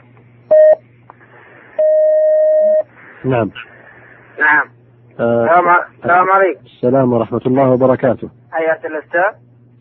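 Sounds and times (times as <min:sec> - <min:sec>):
low hum: 0:00.0 - 0:09.7
electronic phone tones as a call line connects: 0:00.5 - 0:00.8, 0:01.8 - 0:02.9
speech: 0:03.2 - 0:03.7, 0:04.4 - 0:09.5.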